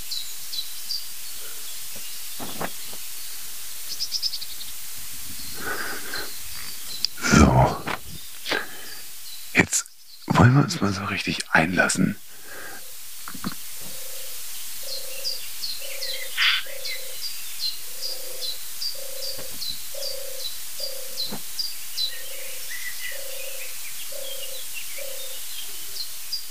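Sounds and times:
faint high-pitched chirping from birds or insects: 0.0s - 26.5s
small South African doves cooing: 1.3s - 3.1s, 5.0s - 9.1s, 12.2s - 26.0s
speech: 10.4s - 12.3s.

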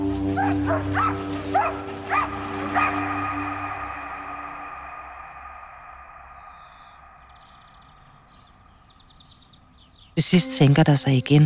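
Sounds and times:
police dogs barking at demonstrators in Greve Denmark: 0.2s - 4.0s
speech: 0.7s - 2.2s, 10.2s - 11.4s
steady low droning hum: 1.2s - 9.0s.

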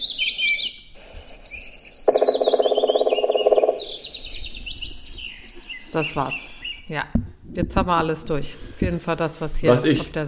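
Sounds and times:
other birds singing high chirping and trilling phrases: 0.0s - 7.0s
Black Woodpecker drum roll played from a recording: 1.9s - 5.2s
speech: 6.0s - 10.2s.

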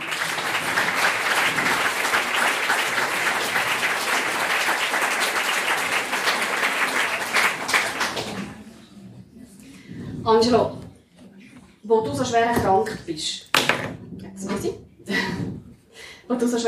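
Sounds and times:
audience applause for a guest speaker: 0.0s - 8.8s
speech: 10.3s - 10.8s, 12.1s - 13.5s, 14.4s - 15.4s, 16.3s - 16.6s.

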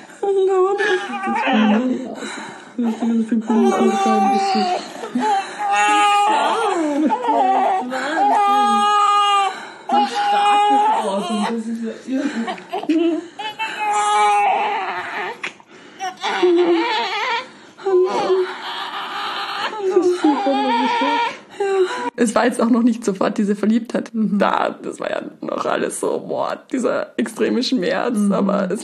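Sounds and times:
newborn baby crying in its first minute of life: 0.0s - 22.2s
speech: 0.2s - 5.9s, 22.2s - 28.8s.

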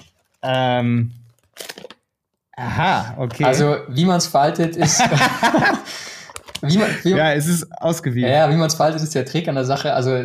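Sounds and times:
person's brief sustained voice: 0.4s - 1.2s, 2.6s - 5.2s, 6.6s - 10.2s
speech: 0.4s - 1.7s, 2.6s - 10.2s
bag being opened with crinkly rustling: 1.2s - 2.0s
laughter: 4.7s - 7.5s.

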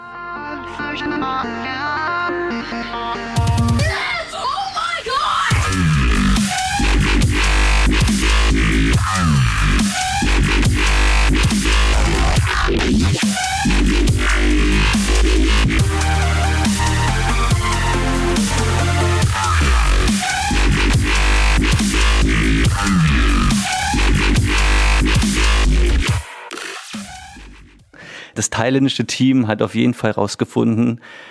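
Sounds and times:
speech: 1.0s - 4.2s, 28.5s - 31.2s
loud electronic dance track with heavy bass and gritty synth stabs: 2.4s - 4.5s, 5.4s - 27.9s.

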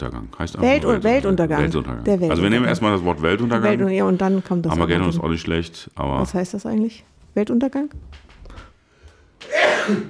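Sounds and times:
speech: 0.0s - 8.6s, 9.5s - 10.0s
loud sneeze: 9.4s - 10.0s.

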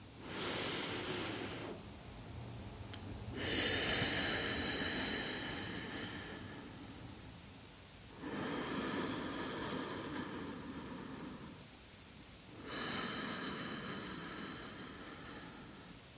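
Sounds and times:
slow deep belly breathing during a relaxation exercise: 0.2s - 1.8s, 3.3s - 7.4s, 8.1s - 11.7s, 12.6s - 16.1s.

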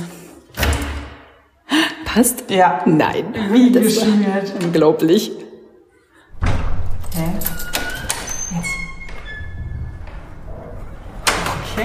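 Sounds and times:
speech: 2.2s - 5.4s
lock mechanism rattling knock: 6.6s - 11.8s
key turning in the lock of an old villa door: 6.9s - 9.7s.

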